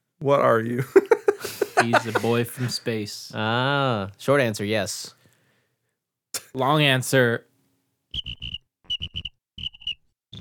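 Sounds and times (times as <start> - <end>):
speech: 0.2 - 5.2, 6.6 - 7.5
laughter: 0.8 - 3.2
crickets chirping: 8.2 - 10.3.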